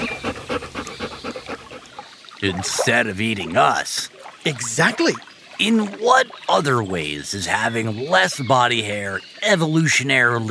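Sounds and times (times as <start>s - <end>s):
lion panting on a shady rock on the hot savanna to keep cool: 0.0s - 3.0s
speech: 2.4s - 10.4s.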